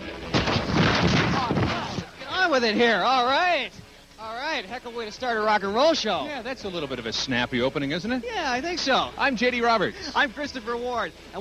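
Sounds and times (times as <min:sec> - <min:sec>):
fireworks crackling, popping and banging: 0:00.0 - 0:02.2
speech: 0:02.6 - 0:03.8, 0:04.6 - 0:11.4.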